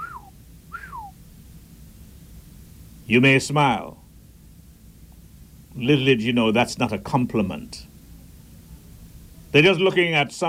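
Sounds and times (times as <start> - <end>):
two-part wolf whistle: 0.0 - 1.2
low rumble: 0.0 - 10.4
speech: 3.1 - 4.0, 5.8 - 7.9, 9.5 - 10.4.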